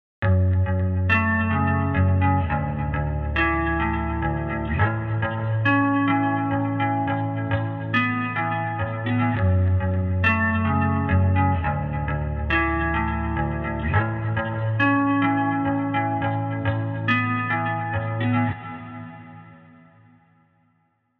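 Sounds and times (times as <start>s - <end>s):
guitar: 0.2s - 20.7s.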